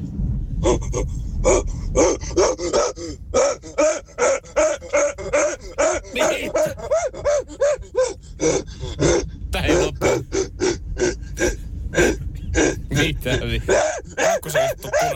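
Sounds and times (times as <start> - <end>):
steady low rumble of a car interior: 0.0 - 15.1
speech: 0.6 - 1.8
person at a car steering wheel imitating a gorilla with huffing grunts: 3.6 - 7.8, 8.4 - 15.1.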